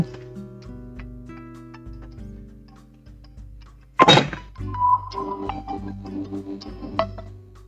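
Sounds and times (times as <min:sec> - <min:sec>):
brighter chiming tones: 0:04.6 - 0:06.4
reminder alert melody of electronic tones: 0:04.6 - 0:07.2.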